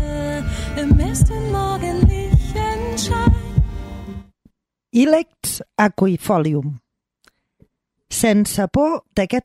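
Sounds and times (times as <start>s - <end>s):
speech: 0.8s - 2.0s, 5.0s - 6.8s, 8.1s - 9.4s
heartbeat sound effect in paired beats: 0.9s - 2.6s, 3.2s - 3.8s.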